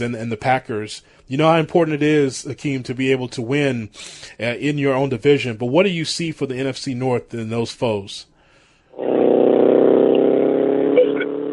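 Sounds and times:
speech: 0.0 - 8.3
two motorcycles driving past: 9.0 - 11.5.

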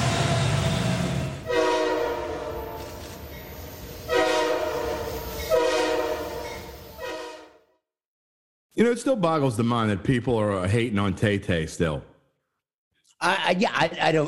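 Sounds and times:
low steady rumble of a rolling train: 0.0 - 7.0
loud train horn blasts: 1.4 - 3.2, 4.0 - 7.7
speech: 8.8 - 12.1, 13.2 - 14.2.

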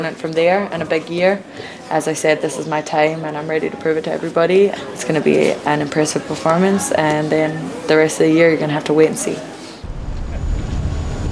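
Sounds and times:
speech: 0.0 - 9.5
steady wind buffeting the microphone: 9.8 - 11.3
tour boat low engine drone on the River Thames in London: 9.9 - 11.3.

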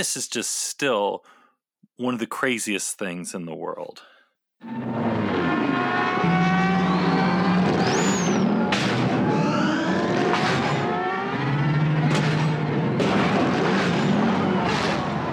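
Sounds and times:
speech: 0.0 - 1.4, 2.0 - 6.0
futuristic racing pod engines roaring and whining: 4.6 - 15.3.

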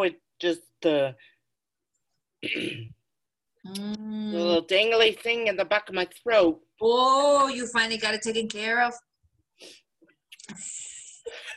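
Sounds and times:
speech: 0.0 - 1.3, 2.4 - 3.0, 3.6 - 9.8, 10.5 - 11.5
person coughing after something went down the wrong pipe: 2.4 - 3.0.

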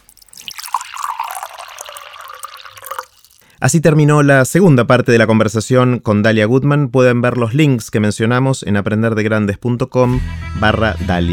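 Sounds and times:
water poured into a glass: 0.0 - 3.6
speech: 3.6 - 11.3.

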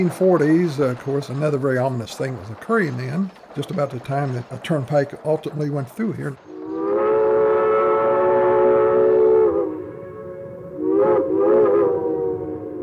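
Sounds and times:
speech: 0.0 - 6.5
steam train chugging: 0.0 - 12.8
steam train whistle: 6.5 - 12.8.

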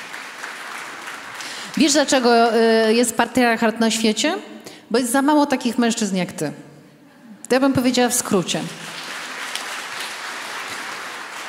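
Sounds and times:
audience applause: 0.0 - 2.3, 8.6 - 11.4
speech: 1.8 - 6.7, 7.5 - 9.0.

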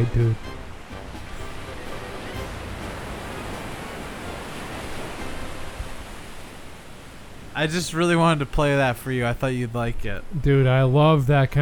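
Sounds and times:
speech: 0.0 - 0.6, 7.6 - 11.6
ocean surf washing onto the shore: 0.0 - 11.6.

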